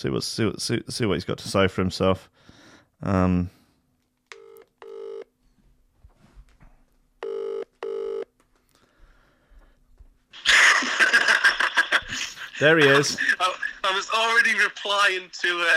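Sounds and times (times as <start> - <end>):
speech: 0.0 - 3.6, 12.6 - 15.7
double-pulse ringback tone of an outgoing phone call: 4.3 - 5.3, 7.2 - 8.3
laughter: 10.4 - 14.9.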